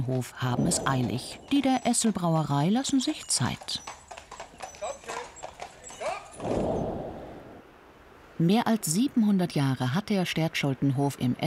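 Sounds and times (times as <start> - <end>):
speech: 0.0 - 4.0, 8.4 - 11.4
horse hooves clip-clopping: 0.0 - 6.8
broad rushing noise of horses passing: 0.4 - 2.4.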